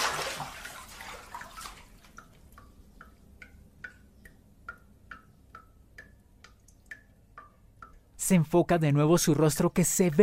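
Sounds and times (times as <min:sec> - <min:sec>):
water splashing: 0:00.0 - 0:02.7
faucet dripping into water: 0:01.3 - 0:08.2
speech: 0:08.3 - 0:10.2.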